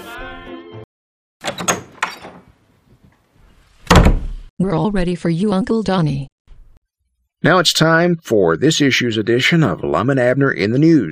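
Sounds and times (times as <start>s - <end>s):
door opening with rattling latch and hinge noise: 1.4s - 2.5s
speech: 4.6s - 6.3s, 7.4s - 11.1s.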